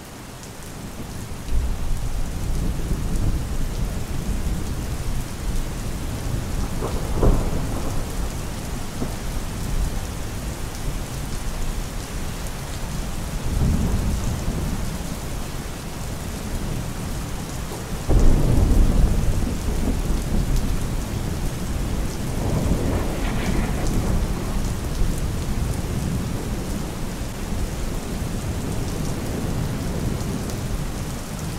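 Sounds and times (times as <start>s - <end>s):
steady rain pouring: 0.0s - 31.5s
low rumbles of thunder: 1.6s - 10.7s, 18.0s - 30.5s.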